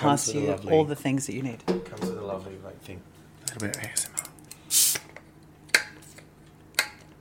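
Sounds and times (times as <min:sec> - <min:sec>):
speech: 0:00.0 - 0:04.9
sparkling rosé bottle opening with fizzy hiss: 0:04.7 - 0:05.2.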